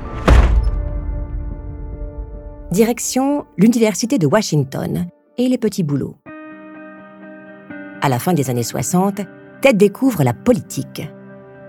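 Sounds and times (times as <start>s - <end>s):
heavy door slamming shut: 0.0s - 1.6s
speech: 2.7s - 6.3s, 8.0s - 11.2s.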